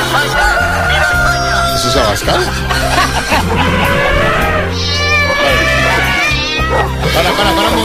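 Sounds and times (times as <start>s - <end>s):
laughter: 0.0s - 6.4s
speech: 2.0s - 4.2s, 6.7s - 7.8s
steady low hum: 2.6s - 6.0s
person imitating cat meows: 3.8s - 7.8s.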